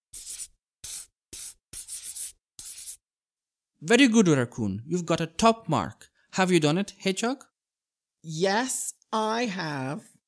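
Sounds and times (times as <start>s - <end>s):
pencil scratching across paper: 0.0s - 3.1s
speech: 3.8s - 7.5s, 8.2s - 10.1s.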